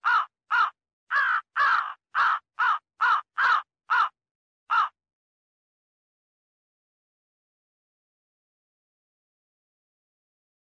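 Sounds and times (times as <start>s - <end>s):
crow giving a short hoarse caw: 0.0s - 5.0s.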